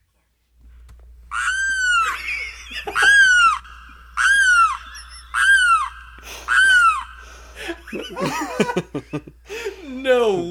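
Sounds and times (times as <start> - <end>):
limpkin giving wailing mating calls: 1.3 - 8.4
laughter: 1.4 - 10.4.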